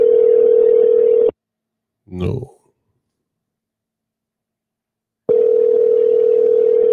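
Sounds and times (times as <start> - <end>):
telephone line tone of an unanswered call: 0.0 - 1.3, 5.3 - 6.9
speech: 2.1 - 2.6.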